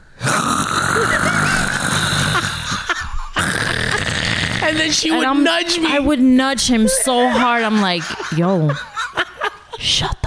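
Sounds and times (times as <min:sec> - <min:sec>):
voice imitating loud snoring: 0:00.2 - 0:05.3
laughter: 0:00.9 - 0:10.2
speech: 0:04.7 - 0:08.9, 0:09.8 - 0:10.2.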